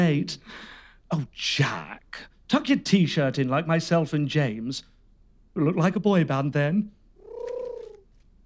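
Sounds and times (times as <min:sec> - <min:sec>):
speech: 0:00.0 - 0:04.9, 0:05.6 - 0:07.0
pigeon cooing: 0:07.2 - 0:08.0.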